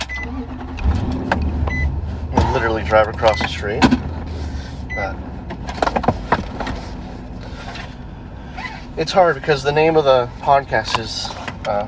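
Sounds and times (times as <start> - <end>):
car engine cranking: 0.0 - 11.8
speech: 2.9 - 4.0, 9.0 - 11.8.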